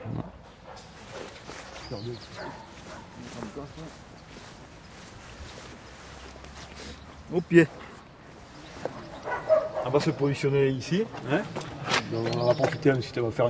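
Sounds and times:
steady noisy outdoor background: 0.0 - 13.4
speech: 1.9 - 4.5, 7.3 - 7.8, 9.8 - 13.4
working dog in a harness barking: 2.3 - 3.3, 9.0 - 10.1.

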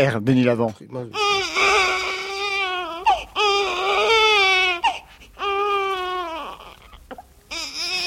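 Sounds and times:
speech: 0.0 - 1.8
baby crying: 1.1 - 8.0.

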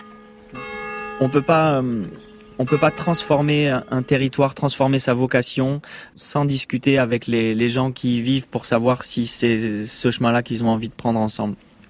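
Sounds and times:
church bells ringing in the valleys: 0.0 - 5.6
speech: 1.2 - 11.7.

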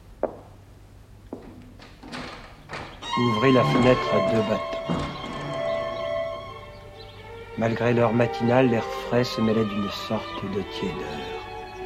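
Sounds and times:
door thunk with a faint ringing latch: 2.0 - 6.3
speech: 3.2 - 5.3, 7.6 - 11.4.

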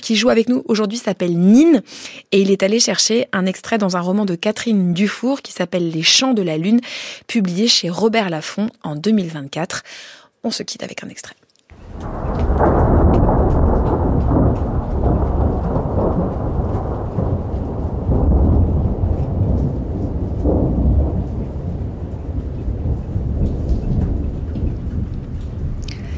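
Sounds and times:
speech: 0.0 - 11.4
heavy rain in a thunderstorm: 11.7 - 26.1
deep rolling thunder: 11.8 - 26.1.

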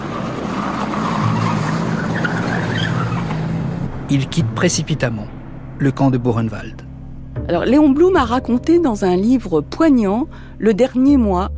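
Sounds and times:
car tires screeching and skidding: 0.0 - 5.2
speech: 4.1 - 6.8, 7.5 - 11.5.

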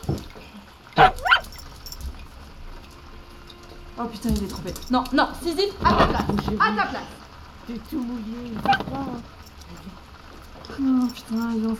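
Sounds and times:
dog barking: 1.0 - 1.6, 8.6 - 9.2
speech: 4.0 - 9.8, 10.8 - 11.7.

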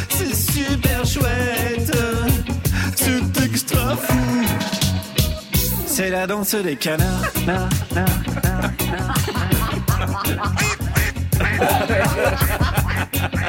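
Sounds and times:
loud bouncy party music with a steady beat: 0.0 - 13.4
speech: 6.1 - 8.5, 11.6 - 12.6
laughter: 7.0 - 13.4
imitation duck quacks voiced in quick bursts: 10.1 - 13.4.

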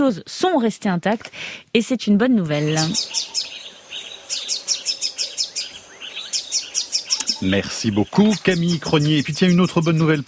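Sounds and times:
speech: 0.0 - 3.6, 7.4 - 10.2
double-collared sunbird singing: 2.5 - 10.2.

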